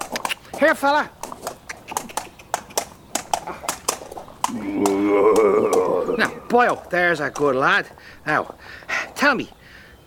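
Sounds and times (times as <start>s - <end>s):
horse hooves clopping: 0.0s - 9.6s
speech: 0.6s - 1.2s, 4.5s - 9.6s
horse whinnying: 4.5s - 6.5s.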